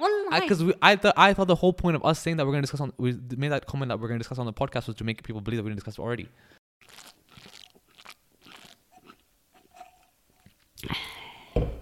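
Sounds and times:
speech: 0:00.3 - 0:07.5, 0:10.8 - 0:11.1
person sipping a drink with slurps and swallows: 0:06.8 - 0:11.7.

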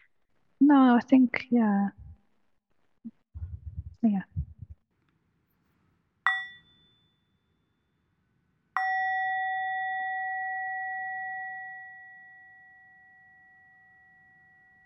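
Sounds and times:
speech: 0:00.6 - 0:02.0, 0:04.0 - 0:04.3
bell ringing: 0:06.3 - 0:07.1, 0:08.8 - 0:12.6.

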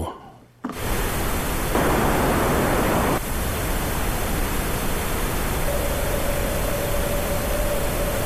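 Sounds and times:
pink noise through an EQ giving broadband hiss: 0:00.6 - 0:08.2
thin tone ringing from a narrow-Q EQ boost: 0:05.7 - 0:08.2.

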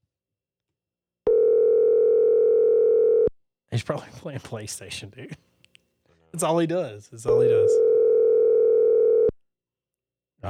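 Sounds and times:
phone line ringback tone: 0:01.3 - 0:03.3, 0:07.4 - 0:09.3
speech: 0:03.7 - 0:05.5, 0:06.3 - 0:07.9.

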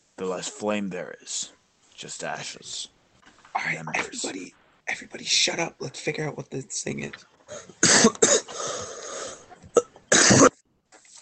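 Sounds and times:
speech: 0:00.2 - 0:03.0, 0:03.6 - 0:08.5
harsh coughing from a ghostly body amid smoke: 0:07.5 - 0:10.6.

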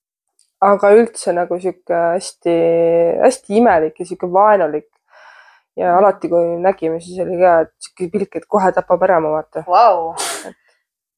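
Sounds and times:
speech: 0:00.6 - 0:04.9, 0:05.8 - 0:10.6
faint trailing breath: 0:05.1 - 0:05.8
person sneezing: 0:10.1 - 0:10.5.

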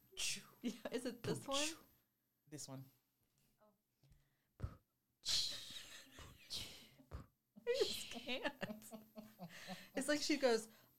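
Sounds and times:
speech: 0:00.3 - 0:01.9, 0:02.5 - 0:03.0, 0:07.7 - 0:10.8
breathy beatboxing with kick-like puffs and hissing breaths: 0:04.6 - 0:04.9, 0:07.0 - 0:07.4.

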